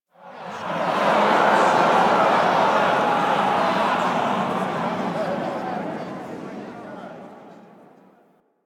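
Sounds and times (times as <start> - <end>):
crowd panicking in an amphitheatre: 0.3 - 7.9
laughter: 0.4 - 7.3.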